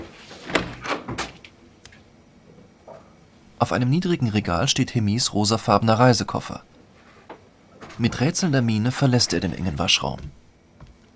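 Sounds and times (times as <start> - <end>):
storage room door pulled open: 0.0 - 1.5, 7.0 - 10.6
speech: 3.6 - 6.8, 8.0 - 10.4.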